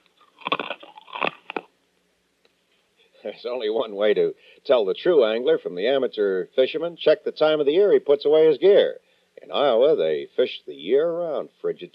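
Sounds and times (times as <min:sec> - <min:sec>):
cough drop being bitten and chewed: 0:00.2 - 0:01.7
speech: 0:03.2 - 0:11.9.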